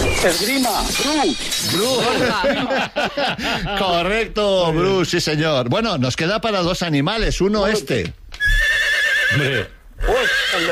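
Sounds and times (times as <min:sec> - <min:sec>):
speech: 0:00.2 - 0:08.6, 0:09.3 - 0:10.6
laughter: 0:01.6 - 0:04.3
horse neighing: 0:08.4 - 0:10.6.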